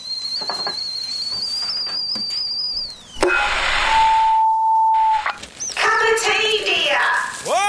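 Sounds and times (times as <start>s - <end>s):
plain electronic beep: 0.0s - 6.3s
kettle whistling while boiling for tea: 0.0s - 6.5s
hissing burst: 2.2s - 7.0s.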